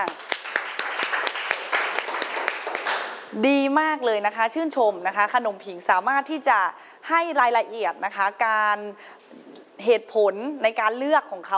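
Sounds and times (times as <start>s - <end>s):
group of children clapping: 0.0s - 3.3s
speech: 3.3s - 9.2s, 9.8s - 11.5s.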